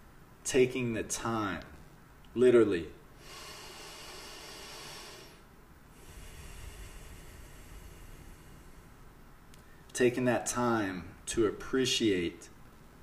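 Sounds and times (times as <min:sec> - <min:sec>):
speech: 0:00.5 - 0:01.7, 0:02.4 - 0:03.4, 0:10.0 - 0:12.5
long hissing deep nasal inhale: 0:03.2 - 0:09.9.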